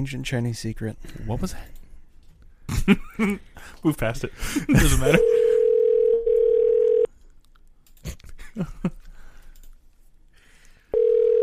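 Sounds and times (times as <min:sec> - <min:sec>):
speech: 0:00.0 - 0:01.8, 0:02.8 - 0:05.6, 0:08.6 - 0:09.0
telephone ringback tone on a call: 0:05.2 - 0:07.1, 0:11.0 - 0:11.4.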